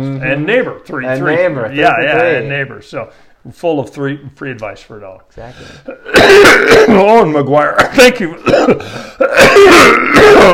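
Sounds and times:
speech: 0.2s - 10.5s
person coughing: 5.7s - 10.5s.

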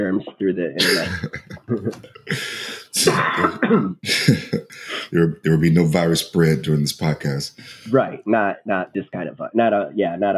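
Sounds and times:
speech: 0.0s - 10.3s
person coughing harshly: 0.8s - 5.2s
throat clearing: 0.8s - 5.4s, 7.6s - 7.9s
laughter: 0.8s - 8.0s.

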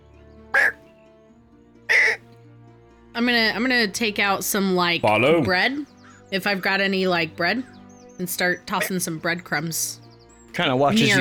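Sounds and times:
person imitating crow caws: 0.6s - 0.8s, 1.9s - 2.2s
speech: 3.2s - 11.1s.

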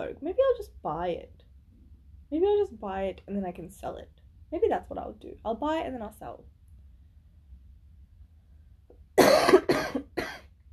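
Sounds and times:
speech: 0.0s - 1.4s, 2.3s - 6.6s, 9.2s - 10.3s
harsh broadband coughs close to the microphone: 9.2s - 10.5s.

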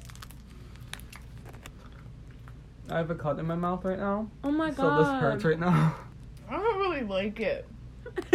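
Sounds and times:
small crunches: 0.0s - 2.6s
wet chewing on a sticky cherry treat: 0.0s - 3.0s
low steady hum: 0.0s - 8.3s
speech: 2.9s - 8.3s.

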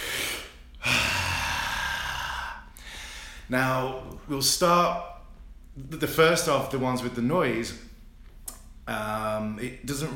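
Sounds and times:
deep breath in as a breathing exercise: 0.0s - 3.5s
speech: 3.5s - 5.1s, 5.8s - 7.9s, 8.9s - 10.1s.

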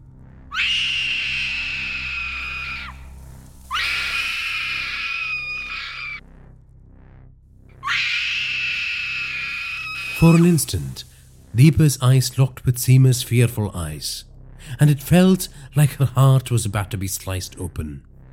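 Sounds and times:
woman screaming as she is dragged away: 0.5s - 3.0s, 3.7s - 6.2s, 7.8s - 10.4s
speech: 10.2s - 18.1s.

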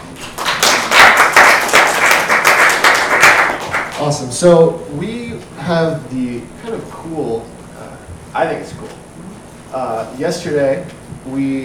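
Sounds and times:
crowd applauding: 0.1s - 4.2s
speech: 4.1s - 6.6s, 8.4s - 8.8s, 9.7s - 11.6s.

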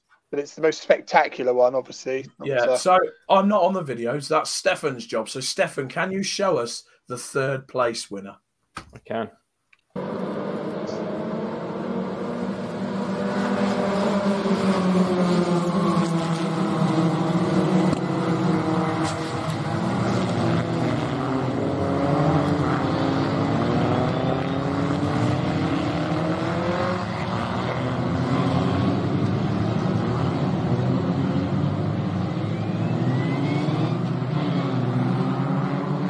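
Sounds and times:
speech: 0.3s - 9.4s
racing car engines roaring and whining during a multi-car crash: 10.0s - 36.0s.

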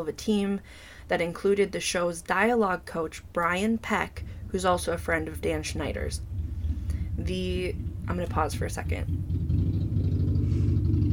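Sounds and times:
speech: 0.0s - 6.3s, 7.2s - 9.3s
heavy trucks rumbling past outside: 4.1s - 11.1s.

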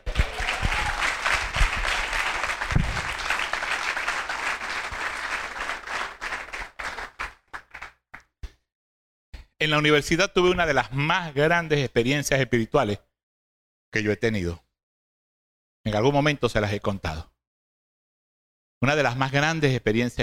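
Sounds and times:
crowd applauding: 0.0s - 8.0s
speech: 9.6s - 13.1s, 14.0s - 14.6s, 15.8s - 17.3s, 18.8s - 20.2s.

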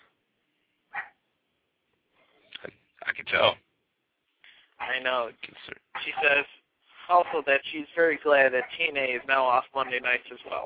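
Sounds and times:
dog giving a short sharp bark: 0.9s - 1.2s
speech: 3.3s - 3.6s, 5.0s - 10.6s
faint murmuring noise: 4.8s - 10.6s.

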